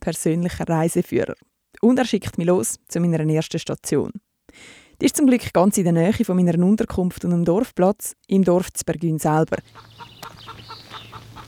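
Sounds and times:
speech: 0.0 - 10.6
chickens clucking at a chicken coop: 9.6 - 11.4.

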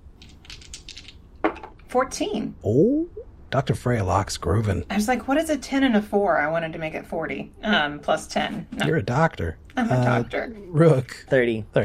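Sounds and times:
dice for a D100 roll clattering across a tabletop during a tabletop game: 0.2 - 1.8
speech: 1.9 - 11.8.

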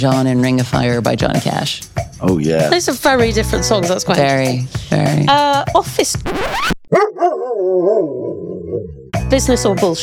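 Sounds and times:
speech: 0.0 - 10.0
dog barking in an office: 6.9 - 8.4
dog giving a wavering whine-like howl in an office: 6.9 - 9.1.

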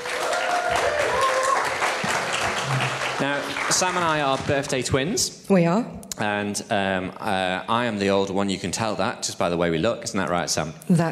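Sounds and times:
audience applause welcoming a female guest: 0.0 - 5.1
speech: 3.2 - 11.1.

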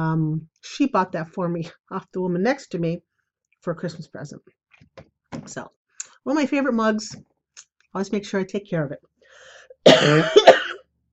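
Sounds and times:
speech: 0.0 - 7.3, 7.9 - 10.6
raspy hacking cough: 9.8 - 10.9.

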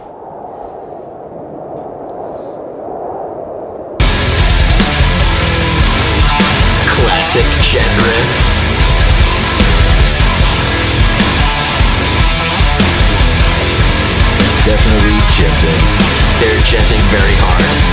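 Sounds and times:
distorted guitars in heavy metal music: 4.0 - 17.9
rapid pounding drums in heavy metal music: 4.0 - 17.9.

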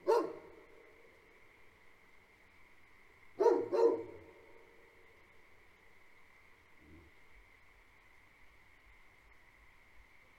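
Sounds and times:
Great Pyrenees livestock guardian dogs barking on a farm at night: 0.0 - 0.5, 3.4 - 4.2.

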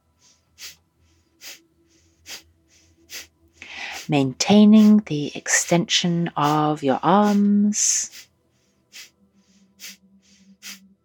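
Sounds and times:
sharp breaths out through the nose during a breathing exercise: 0.2 - 4.1, 8.1 - 10.8
speech: 4.1 - 8.3.

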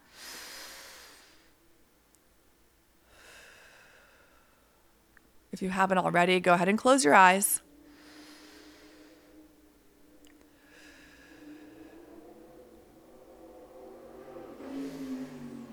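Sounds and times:
speech: 5.6 - 7.6
motorcycle engine droning and revving: 10.5 - 15.7.

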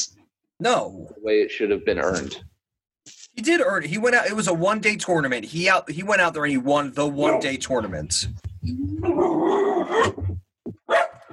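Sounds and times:
speech: 0.0 - 2.5, 3.4 - 10.2
dog barking: 7.2 - 7.6, 9.2 - 10.2, 10.8 - 11.3.

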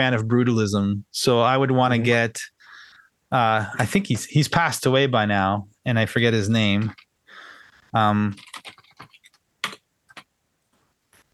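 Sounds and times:
speech: 0.0 - 2.5, 3.3 - 7.0, 7.9 - 8.5
typing on a computer keyboard: 8.3 - 10.3.

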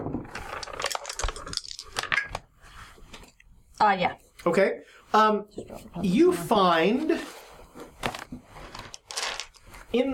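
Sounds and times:
dice clattering and tumbling across a hard tabletop: 0.4 - 2.4, 8.0 - 9.7
speech: 3.8 - 7.4.

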